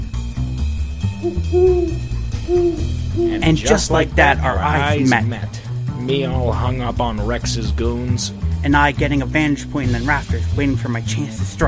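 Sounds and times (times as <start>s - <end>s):
low steady rumbling background: 0.3s - 8.9s
human voice imitating an owl hoot as a signal call: 1.2s - 4.0s, 4.8s - 5.2s
speech: 1.2s - 11.6s.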